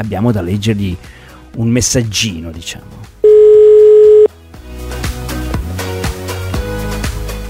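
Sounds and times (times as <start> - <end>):
speech: 0.0 - 3.2
telephone ringing tone on an Italian line: 3.2 - 4.3.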